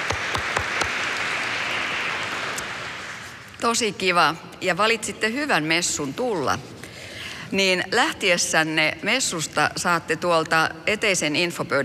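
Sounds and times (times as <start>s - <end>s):
crowd applause at a church mass: 0.0s - 3.5s
speech: 3.6s - 6.8s, 7.5s - 11.8s.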